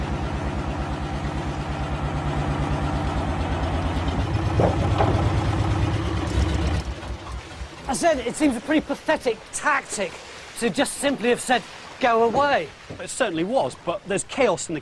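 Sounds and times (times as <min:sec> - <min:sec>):
large engine idling: 0:00.0 - 0:08.6
speech: 0:08.0 - 0:14.7.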